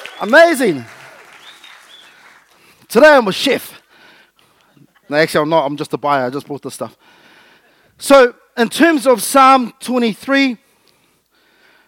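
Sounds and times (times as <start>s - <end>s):
audience applause: 0.0s - 2.7s
speech: 0.2s - 1.0s, 2.9s - 3.7s, 5.1s - 7.2s, 8.0s - 10.6s
faint whistles from the audience: 1.4s - 2.3s.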